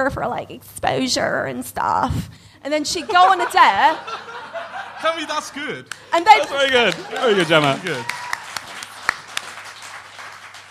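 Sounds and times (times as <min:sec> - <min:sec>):
speech: 0:00.0 - 0:08.2
laughter: 0:02.9 - 0:08.3
brief quiet applause: 0:05.9 - 0:10.7.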